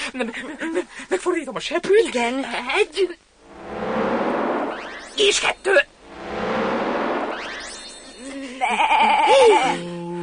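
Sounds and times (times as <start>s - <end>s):
speech: 0.1s - 3.2s, 5.2s - 5.9s, 8.7s - 9.9s
rising whooshing sweep: 3.3s - 8.4s.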